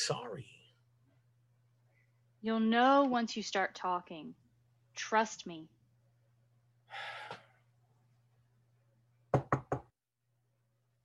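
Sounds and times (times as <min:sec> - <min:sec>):
speech: 0:00.0 - 0:00.6, 0:02.4 - 0:04.4, 0:05.0 - 0:05.8
short breathy gasp: 0:06.9 - 0:07.5
sharp knocks on a door: 0:09.3 - 0:09.9.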